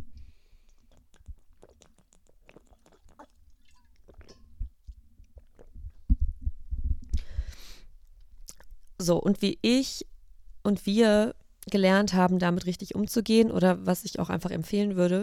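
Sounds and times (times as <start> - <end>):
person sipping a drink: 0.2 - 6.0
quiet mouth clicks: 0.2 - 6.3
gulping swallows: 0.7 - 6.1
speech: 9.0 - 15.2.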